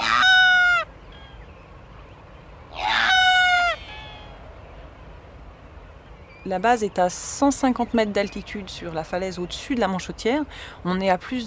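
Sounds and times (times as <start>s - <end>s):
sooty albatrosses calling on an island: 0.0s - 1.5s, 2.7s - 4.4s
speech: 6.5s - 11.4s.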